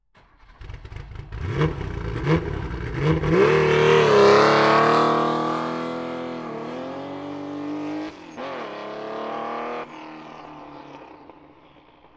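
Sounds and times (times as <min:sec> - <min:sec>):
Porsche 936 race car engine: 0:00.2 - 0:12.0.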